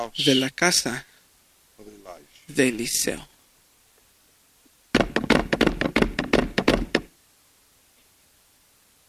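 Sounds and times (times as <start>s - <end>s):
speech: 0.0s - 1.1s, 2.5s - 3.3s
knocking on a door: 4.9s - 7.1s.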